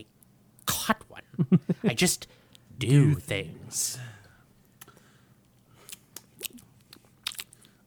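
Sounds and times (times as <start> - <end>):
speech: 0.9 - 4.2
soft mouth noises: 4.7 - 7.8
Jolly Rancher hard candy crunching and chewing: 5.8 - 7.8.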